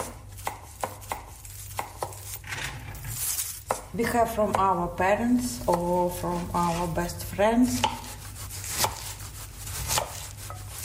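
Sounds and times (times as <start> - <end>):
knife chopping food on a cutting board for borscht: 0.0 - 2.4, 3.6 - 4.8, 5.4 - 10.8
low steady kitchen hum: 0.0 - 10.8
scraping rustle: 2.5 - 3.6
speech: 3.9 - 8.0.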